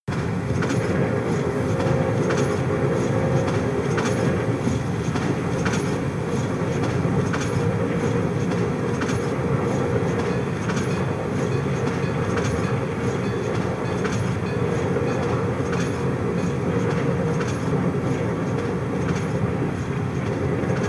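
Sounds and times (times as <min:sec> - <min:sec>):
train ride: 0:00.1 - 0:20.8.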